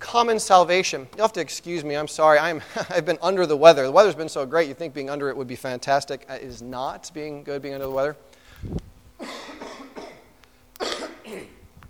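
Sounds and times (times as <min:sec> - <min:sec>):
speech: 0:00.1 - 0:09.4
ill person coughing in harsh hacking fits: 0:09.2 - 0:11.7.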